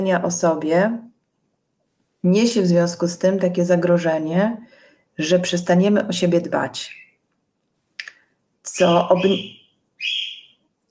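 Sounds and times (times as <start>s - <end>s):
speech: 0.0s - 1.1s, 2.2s - 7.0s, 8.6s - 10.2s
pet parrots calling: 8.8s - 10.6s.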